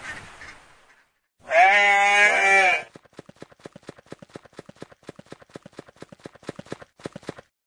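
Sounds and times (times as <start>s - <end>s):
goat bleating: 1.4s - 2.9s
goat hooves clip-clopping: 2.8s - 7.5s.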